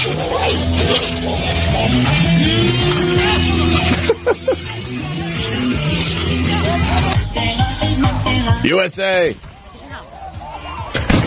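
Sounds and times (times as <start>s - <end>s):
crowd chatter and indistinct voices: 0.0s - 11.2s
speech: 0.1s - 2.9s, 8.6s - 9.5s
laughter: 1.2s - 5.5s, 6.2s - 7.3s
fireworks exploding: 10.9s - 11.2s.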